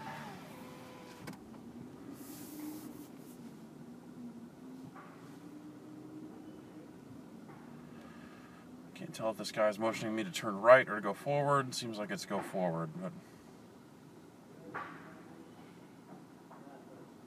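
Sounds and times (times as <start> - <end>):
car power window electric motor hum at a car wash: 0.0 - 1.4
low rumbling noise: 0.0 - 17.2
speech: 9.0 - 13.3.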